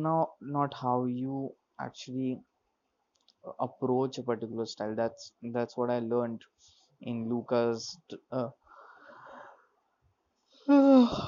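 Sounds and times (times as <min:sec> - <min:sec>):
speech: 0:00.0 - 0:02.5, 0:03.4 - 0:08.6, 0:10.7 - 0:11.2
person yawning: 0:10.7 - 0:11.2.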